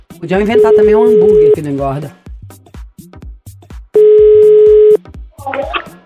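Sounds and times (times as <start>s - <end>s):
speech: 0.2s - 2.6s
loud steady buzzing telephone tone while a call is placed: 0.6s - 1.6s, 4.0s - 5.0s.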